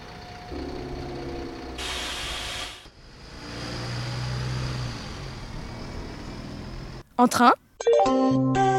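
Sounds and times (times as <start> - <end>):
bus engine rumbling and idling: 0.0 - 7.5
bus air brakes hissing: 1.8 - 2.9
speech: 7.2 - 8.7.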